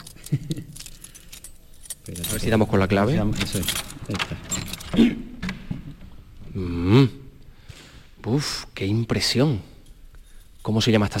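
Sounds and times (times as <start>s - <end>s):
bunch of keys jangling: 0.0s - 5.1s, 9.8s - 10.8s
speech: 0.3s - 0.6s, 2.4s - 5.3s, 8.4s - 9.7s, 10.6s - 11.1s.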